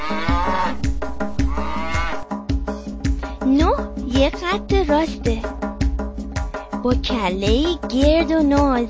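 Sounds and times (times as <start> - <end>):
cow mooing: 0.0 - 0.8, 1.4 - 2.2
steady rhythmic musical backing of a counting song: 0.0 - 8.8
speech: 4.3 - 5.6, 6.8 - 8.8.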